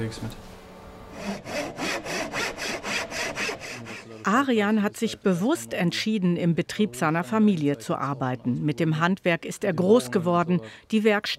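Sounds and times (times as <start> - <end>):
speech: 0.0 - 0.5, 4.1 - 11.3
hand saw cutting through wood: 1.1 - 4.3.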